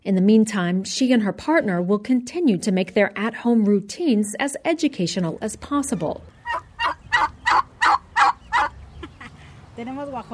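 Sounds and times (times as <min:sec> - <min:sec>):
speech: 0:00.0 - 0:06.6, 0:09.8 - 0:10.3
family-raised turkeys gobbling: 0:05.7 - 0:09.3.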